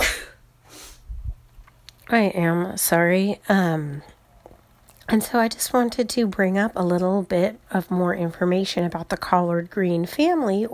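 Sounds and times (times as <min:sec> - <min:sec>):
sneeze: 0:00.0 - 0:01.0
speech: 0:02.1 - 0:04.2, 0:05.1 - 0:10.7.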